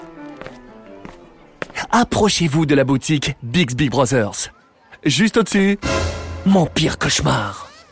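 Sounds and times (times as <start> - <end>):
footsteps at an unhurried pace: 0.0 - 1.9
speech: 1.9 - 7.7.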